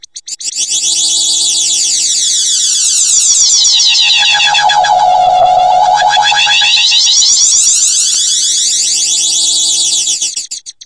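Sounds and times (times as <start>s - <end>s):
computery science fiction synth swoosh: 0.9s - 8.8s.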